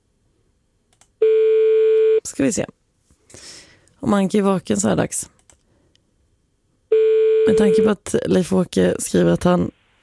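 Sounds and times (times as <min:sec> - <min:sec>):
loud steady telephone tone: 0:01.2 - 0:02.2, 0:06.9 - 0:07.9
speech: 0:02.3 - 0:02.8, 0:04.0 - 0:05.4, 0:07.5 - 0:09.8.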